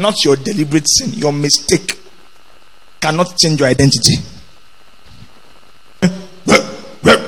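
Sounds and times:
speech: 0.0 - 2.0, 3.0 - 4.3
person imitating dog barks: 6.0 - 7.2.

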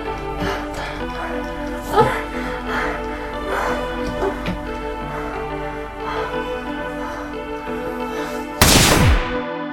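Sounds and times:
steady droning musical bed: 0.0 - 9.7
loud sharp gunshot in a house: 8.6 - 9.5.

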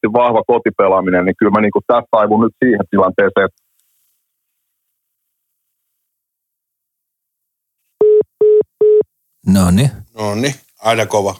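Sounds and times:
speech: 0.0 - 3.6, 9.4 - 11.3
telephone busy tone after a caller hangs up: 8.0 - 9.0.

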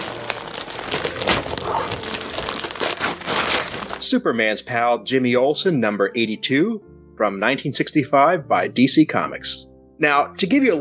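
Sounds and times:
gift wrapping paper being unwrapped: 0.0 - 4.1
speech: 4.1 - 10.7.

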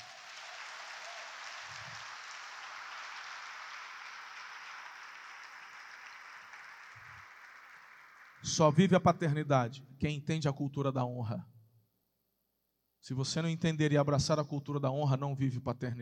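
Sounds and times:
large crowd applauding the Lord: 0.0 - 8.6
speech: 8.4 - 11.5, 13.0 - 16.0.

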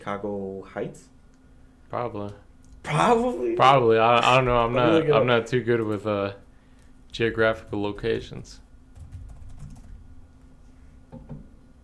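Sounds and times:
speech: 0.0 - 1.2, 1.9 - 6.4, 7.1 - 8.6
rapid typing on a laptop keyboard: 9.0 - 10.0.

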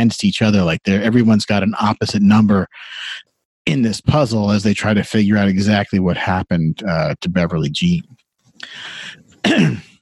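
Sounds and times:
speech: 0.0 - 9.9
person coughing: 9.4 - 10.0.

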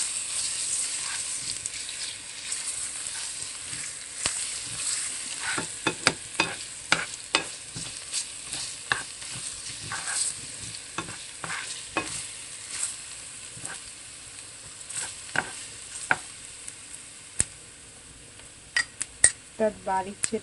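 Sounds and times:
garlic paste sizzling and frying in a pan: 0.0 - 20.4
stirring utensil scraping a pan: 0.3 - 13.0, 13.6 - 13.8, 14.9 - 16.2
speech: 19.6 - 20.4.

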